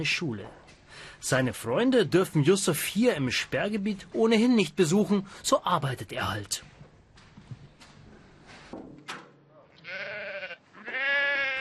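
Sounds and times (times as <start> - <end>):
speech: 0.0 - 6.7
rustles and knocks: 6.7 - 9.4
goats or sheep bleating in an abandoned apartment: 9.8 - 11.5.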